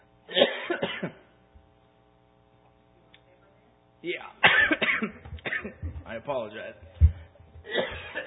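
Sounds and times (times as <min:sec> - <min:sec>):
faint dry cough from a person with a parched throat: 0:00.3 - 0:01.3, 0:04.4 - 0:05.9, 0:07.6 - 0:08.2
speech: 0:06.3 - 0:06.9.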